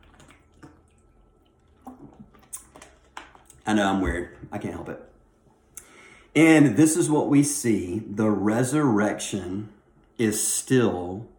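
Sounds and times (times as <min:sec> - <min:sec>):
person sipping water: 0:00.0 - 0:03.7
soft wet gulping: 0:00.0 - 0:05.1
mouth clicks: 0:01.8 - 0:03.6
speech: 0:03.7 - 0:05.1, 0:06.4 - 0:11.3.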